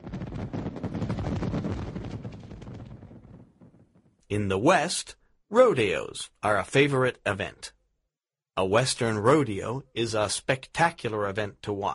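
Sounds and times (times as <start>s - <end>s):
dense barrage of fireworks bursting at American holiday festivities: 0.0s - 4.2s
speech: 4.3s - 7.8s, 8.6s - 11.9s.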